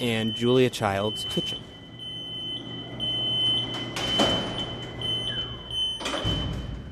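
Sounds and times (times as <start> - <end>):
speech: 0.0 - 1.7
steady high-pitched warning tone: 0.0 - 6.2
heavy freight elevator door rumbling shut with metallic clanks: 3.8 - 5.0, 5.9 - 6.9.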